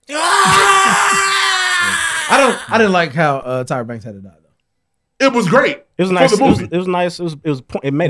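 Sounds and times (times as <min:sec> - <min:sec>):
primal scream in a film fight: 0:00.1 - 0:02.9
speech: 0:02.7 - 0:04.4, 0:05.2 - 0:08.0.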